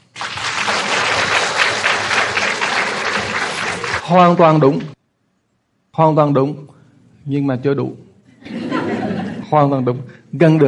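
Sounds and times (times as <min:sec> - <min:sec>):
crowd applause with many hands clapping: 0:00.0 - 0:04.7
speech: 0:04.1 - 0:05.0, 0:06.0 - 0:08.6, 0:09.5 - 0:10.6
laughter: 0:08.4 - 0:10.1.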